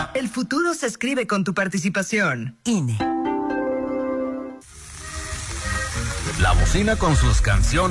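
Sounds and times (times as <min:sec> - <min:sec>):
speech: 0:00.2 - 0:03.2, 0:06.4 - 0:07.8
tonal music: 0:03.0 - 0:07.1
carne asada sizzling on a charcoal grill: 0:04.6 - 0:07.8.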